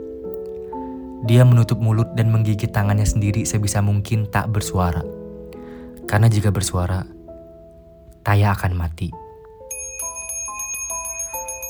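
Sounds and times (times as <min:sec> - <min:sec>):
speech: 0:01.2 - 0:05.2, 0:06.1 - 0:07.2, 0:08.2 - 0:09.2
bell ringing rapidly: 0:09.7 - 0:11.6.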